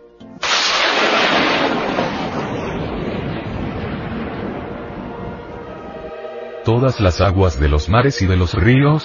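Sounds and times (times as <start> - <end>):
thunder cracking and rumbling: 0.4 - 6.1
speech: 6.8 - 9.0.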